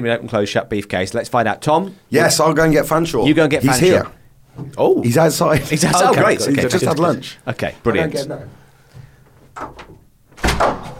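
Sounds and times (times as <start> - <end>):
speech: 0.0 - 8.6, 9.6 - 9.8
door latch clunking as the door swings open: 9.6 - 10.9.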